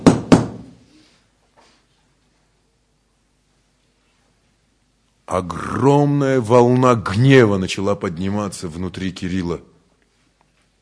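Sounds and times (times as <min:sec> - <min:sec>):
knocking on a door: 0:00.0 - 0:00.7
speech: 0:05.3 - 0:09.7.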